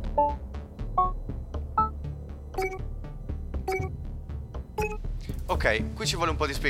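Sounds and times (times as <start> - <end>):
steady low engine rumble in a racing game: 0.0 - 6.4
racing game corner warning beeps: 0.1 - 5.1
speech: 0.2 - 0.5, 5.5 - 6.6.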